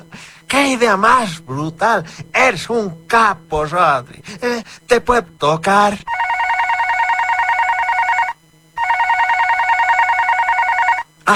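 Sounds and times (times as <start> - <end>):
speech: 0.5 - 6.2
telephone ringing with warbling electronic trill: 6.1 - 11.1.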